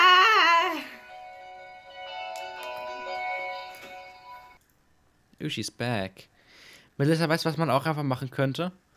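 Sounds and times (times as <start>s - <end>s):
high wavering vocal sound: 0.0s - 1.2s
mobile phone ringing with steady electronic ringtone: 0.9s - 4.6s
speech: 5.4s - 6.3s, 7.0s - 8.8s.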